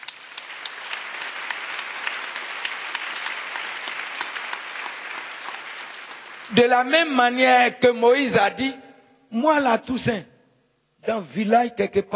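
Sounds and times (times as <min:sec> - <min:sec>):
congregation applauding at a church service: 0:00.0 - 0:06.7
speech: 0:06.5 - 0:10.3, 0:11.0 - 0:12.1.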